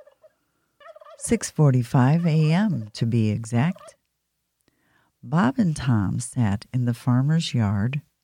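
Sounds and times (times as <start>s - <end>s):
turkey gobbling in warbling bursts: 0.0s - 1.3s, 2.0s - 4.0s
speech: 1.2s - 4.0s, 5.2s - 8.1s.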